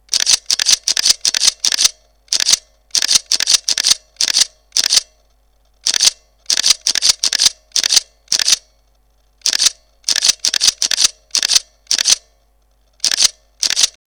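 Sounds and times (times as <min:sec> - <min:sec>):
Pentax K200D camera shutter in continuous high mode: 0:00.1 - 0:05.2, 0:05.8 - 0:08.7, 0:09.4 - 0:12.3, 0:13.0 - 0:14.0.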